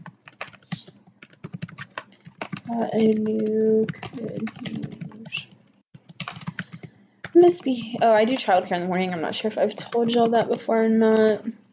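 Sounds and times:
typing on a computer keyboard: 0.0 - 10.5, 11.1 - 11.5
speech: 2.7 - 5.1, 7.4 - 11.6.

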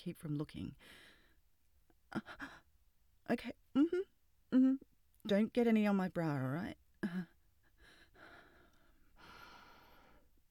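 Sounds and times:
speech: 0.0 - 1.2, 2.1 - 2.6, 3.3 - 7.3
heavy breathing: 7.8 - 10.3.

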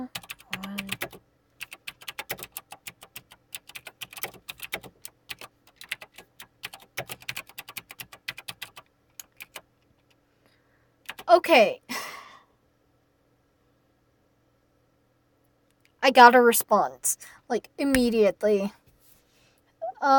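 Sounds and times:
typing on a computer keyboard: 0.1 - 10.2, 11.0 - 11.3
speech: 11.3 - 11.8, 16.1 - 18.8.

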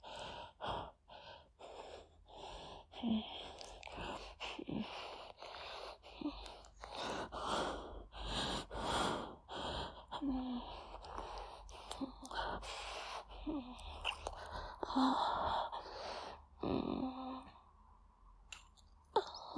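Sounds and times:
heavy breathing with gasps and sighs during a kiss: 0.0 - 17.6.

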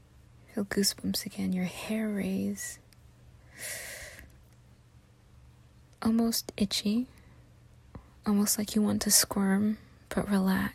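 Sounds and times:
speech: 0.6 - 2.8, 3.6 - 3.9, 6.0 - 7.2, 8.2 - 10.7
soft breathing in through the nose and out through the mouth during a relaxation exercise: 3.3 - 4.5, 7.0 - 8.3.

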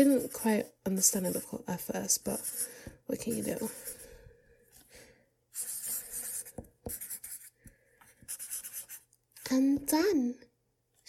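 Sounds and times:
pen scratching across paper: 0.0 - 4.0, 5.5 - 9.1
speech: 0.0 - 4.0, 9.5 - 10.5.

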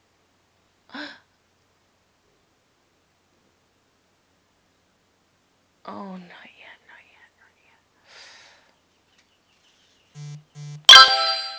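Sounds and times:
speech: 5.9 - 6.5
phone notification chime: 10.2 - 11.5.

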